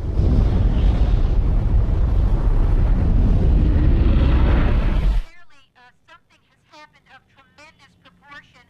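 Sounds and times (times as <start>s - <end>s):
battered aircraft wreck exploding into a dark fiery cloud: 0.0s - 5.3s
buffeting wind: 0.0s - 5.3s.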